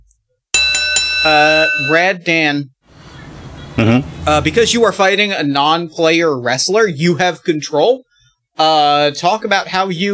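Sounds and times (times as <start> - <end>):
boxing ring bell clanging to start a wrestling match: 0.6 - 2.0
speech: 1.2 - 2.8, 3.8 - 10.1.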